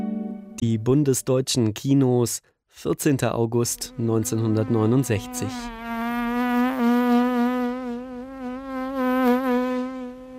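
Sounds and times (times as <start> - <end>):
speech: 0.6 - 5.8
housefly buzzing: 3.8 - 10.3.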